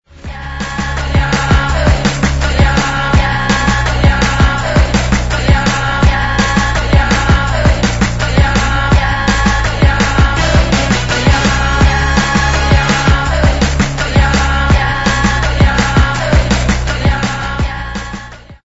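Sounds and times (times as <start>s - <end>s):
atomic drum assembly: 0.1s - 18.6s.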